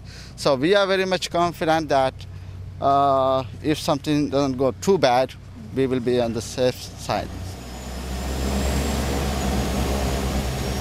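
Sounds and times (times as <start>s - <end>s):
speech: 0.4s - 7.4s
airplane engine drone on a flight to Malé, Maldives: 1.7s - 10.7s
faint high airplane whine: 5.7s - 10.7s.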